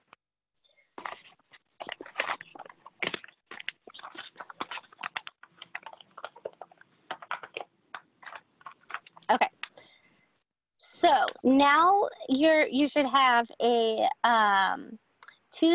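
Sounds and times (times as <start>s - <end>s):
paper sheet being folded and creased along its edge: 0.8s - 9.8s
speech: 11.1s - 15.0s, 15.6s - 15.7s.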